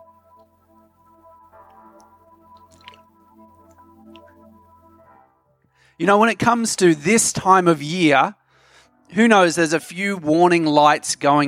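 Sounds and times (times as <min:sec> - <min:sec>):
person drinking from a water bottle: 0:02.7 - 0:03.1
speech: 0:06.0 - 0:08.4, 0:09.1 - 0:11.4.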